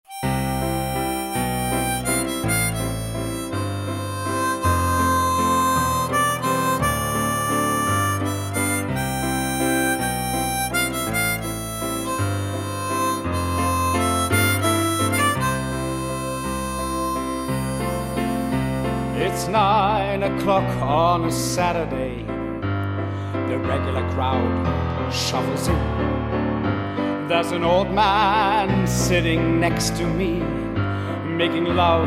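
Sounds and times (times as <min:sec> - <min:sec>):
piano: 0:00.0 - 0:32.0.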